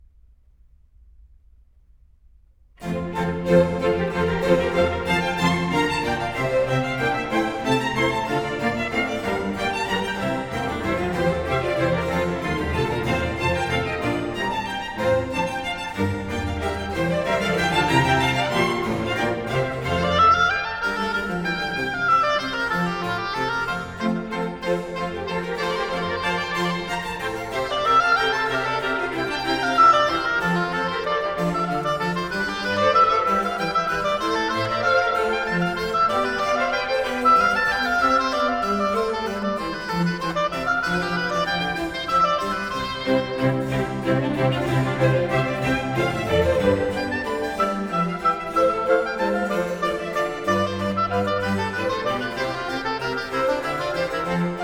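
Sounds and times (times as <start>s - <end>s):
oboe concerto in F major: 2.8s - 54.6s.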